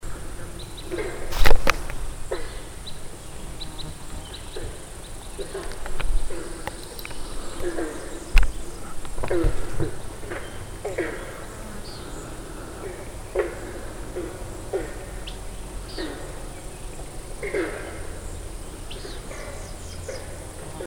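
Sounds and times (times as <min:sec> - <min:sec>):
Red Crossbill calling: 0:00.0 - 0:20.8.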